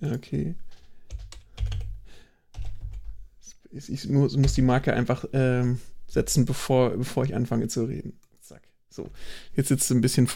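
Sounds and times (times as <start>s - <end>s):
speech: 0.0s - 0.8s, 3.7s - 10.3s
typing on a computer keyboard: 0.7s - 2.0s, 2.6s - 3.1s.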